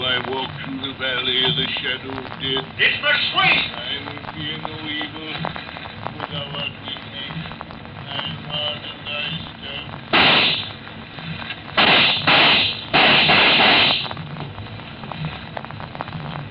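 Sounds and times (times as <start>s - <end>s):
speech: 0.1s - 5.6s, 6.2s - 7.0s
gunshots in an Old West shooting: 10.1s - 10.8s, 11.8s - 14.2s.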